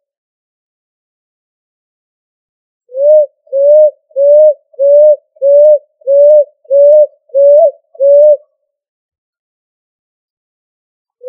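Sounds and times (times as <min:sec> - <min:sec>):
pigeon cooing: 0:02.9 - 0:08.4.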